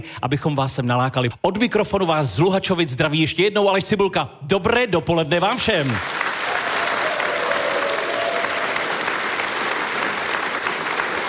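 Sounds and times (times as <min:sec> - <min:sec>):
speech: 0:00.0 - 0:06.3
sustained applause from a large audience: 0:05.8 - 0:11.2.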